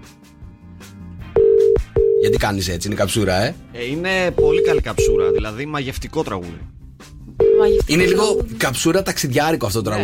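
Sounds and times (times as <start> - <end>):
phone line ringback tone from an outgoing call: 1.4 - 2.4, 4.4 - 5.4, 7.4 - 8.4
speech: 2.2 - 6.8, 7.6 - 10.0.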